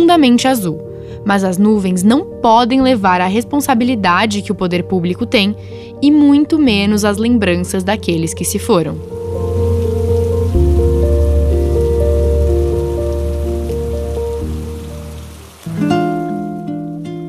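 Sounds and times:
speech: 0:00.2 - 0:09.3
sustained musical tones shifting chords: 0:08.6 - 0:16.9
steady rain pattering on a surface: 0:09.0 - 0:17.0.

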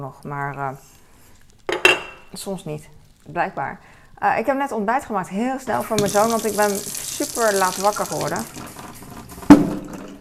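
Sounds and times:
speech: 0:00.0 - 0:01.0, 0:02.3 - 0:08.7
water gushing from a boiling-water tap: 0:05.7 - 0:09.9.

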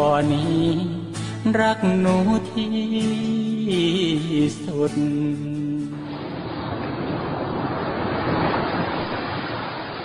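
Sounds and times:
speech: 0:00.2 - 0:05.7
ocean surf washing onto Sai Kaew Beach: 0:03.9 - 0:10.0.

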